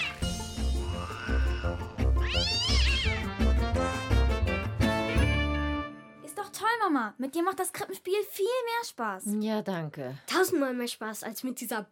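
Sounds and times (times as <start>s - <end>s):
cat yowling and meowing: 0.0s - 3.3s
steady musical background: 0.0s - 7.2s
speech: 7.0s - 11.9s.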